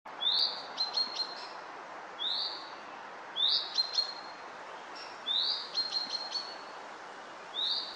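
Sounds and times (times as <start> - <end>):
common chaffinch singing: 0.2 - 1.6, 2.2 - 2.8, 3.4 - 6.8, 7.5 - 7.9.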